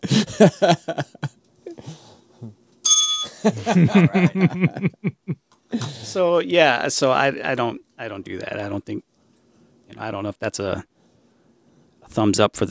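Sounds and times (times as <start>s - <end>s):
people chuckling: 0.0s - 1.8s, 3.3s - 6.0s
speech: 0.2s - 1.1s, 3.5s - 5.3s, 6.2s - 9.1s, 9.9s - 10.9s, 12.1s - 12.6s
bright bell ringing: 2.8s - 3.6s.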